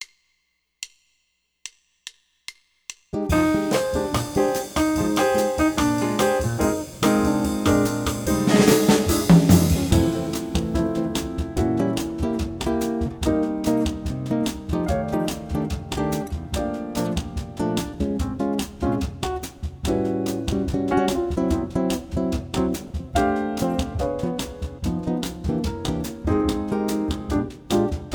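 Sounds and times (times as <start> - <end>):
jazz bossa nova bass play-along: 3.2 - 28.1.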